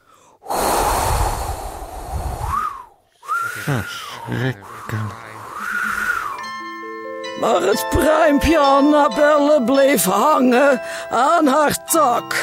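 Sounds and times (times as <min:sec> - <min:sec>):
voice imitating blowing wind: 0:00.5 - 0:06.4
speech: 0:03.6 - 0:05.3, 0:07.4 - 0:12.4.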